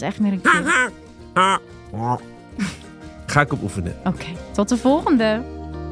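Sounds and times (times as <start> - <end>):
speech: 0.0 - 5.6
voice imitating a cackling flamingo call: 0.4 - 1.6.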